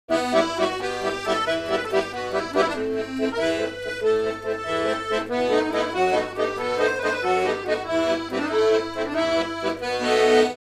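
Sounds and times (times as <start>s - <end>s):
accordion: 0.1s - 10.6s.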